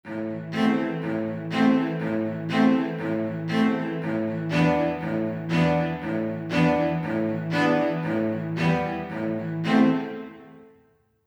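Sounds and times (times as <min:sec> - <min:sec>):
cello in surround: 0:00.0 - 0:10.8.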